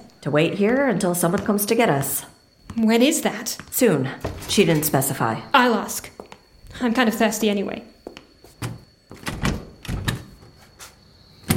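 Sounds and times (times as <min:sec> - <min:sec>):
speech: 0:00.2 - 0:06.2, 0:06.8 - 0:07.9
locked door yanked and rattling against the frame: 0:08.6 - 0:10.4.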